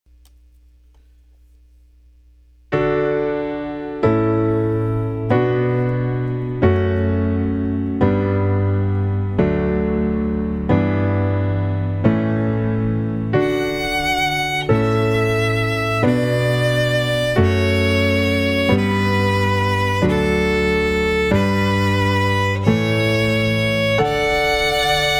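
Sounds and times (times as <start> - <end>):
piano playing a canon: 2.7 - 25.1
violin playing a canon: 4.1 - 25.1.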